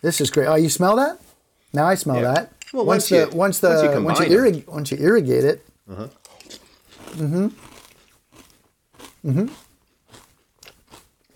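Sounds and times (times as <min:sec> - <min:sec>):
speech: 0:00.0 - 0:06.2, 0:07.1 - 0:07.7, 0:09.2 - 0:09.6
voiced murmurs of enjoyment: 0:05.9 - 0:06.2, 0:07.2 - 0:07.6
chewing crunchy frosted cereal with milk: 0:06.0 - 0:11.3.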